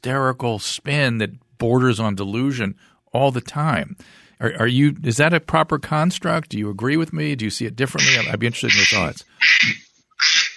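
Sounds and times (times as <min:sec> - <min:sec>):
speech: 0:00.0 - 0:09.9
phone ringtone of duck quacking: 0:08.0 - 0:10.5.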